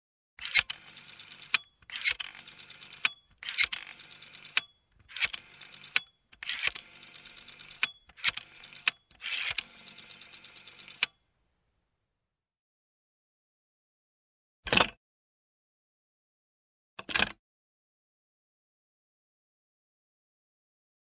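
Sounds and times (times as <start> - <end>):
telephone number dialing: 0.4 - 11.1.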